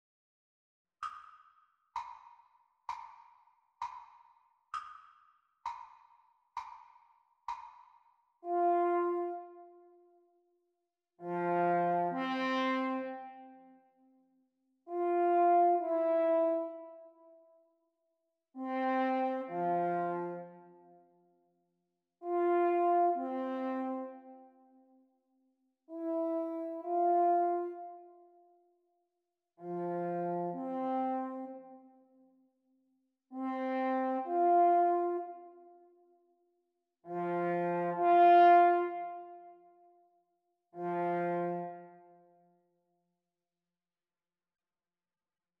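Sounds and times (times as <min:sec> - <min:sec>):
French horn duet playalong: 0:08.4 - 0:10.0, 0:11.2 - 0:13.6, 0:14.9 - 0:17.0, 0:18.6 - 0:20.6, 0:22.2 - 0:24.5, 0:25.9 - 0:28.1, 0:29.6 - 0:32.0, 0:33.4 - 0:35.6, 0:37.1 - 0:39.5, 0:40.8 - 0:42.2.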